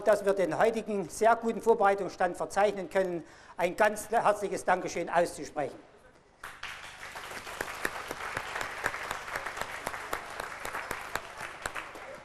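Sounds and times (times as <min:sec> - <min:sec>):
speech: 0:00.0 - 0:06.6
audience applauding after a speech at an anniversary celebration: 0:06.4 - 0:12.2.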